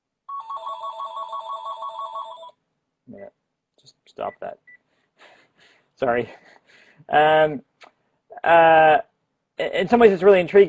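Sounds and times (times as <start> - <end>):
mobile phone ringing with a warbling electronic tone: 0.3 - 2.6
speech: 4.2 - 4.7, 6.0 - 7.7, 8.4 - 10.6.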